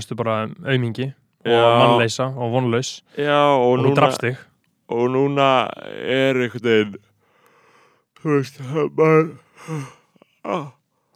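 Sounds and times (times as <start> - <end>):
person speaking drowsily while yawning: 0.0 - 7.0, 8.2 - 10.8
speech: 0.0 - 7.1, 8.2 - 11.1
person yawning: 9.3 - 10.8.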